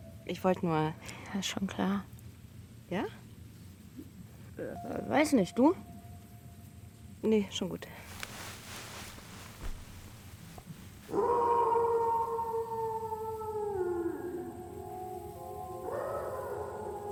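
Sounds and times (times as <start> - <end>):
speech: 0.3 - 2.1, 2.9 - 3.2, 4.6 - 5.9, 7.2 - 8.1
dog howling in the cold: 11.1 - 17.1.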